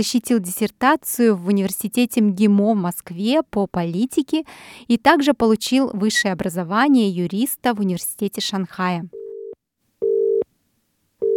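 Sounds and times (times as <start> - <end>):
speech: 0.0 - 9.2
telephone ringing tone while placing a call: 9.2 - 10.5.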